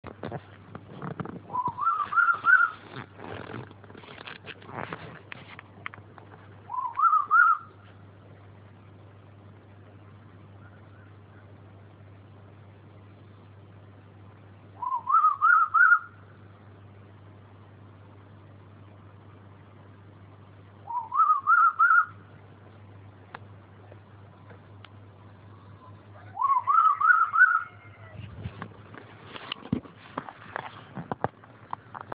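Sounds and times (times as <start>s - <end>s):
low bird call: 1.5s - 3.1s, 6.7s - 7.8s, 10.5s - 11.6s, 14.8s - 16.4s, 20.8s - 22.3s, 25.4s - 28.2s.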